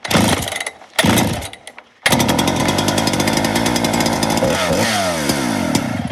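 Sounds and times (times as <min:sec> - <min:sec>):
large professional felling chainsaw engine running after a clutch repair: 0:00.0 - 0:06.0.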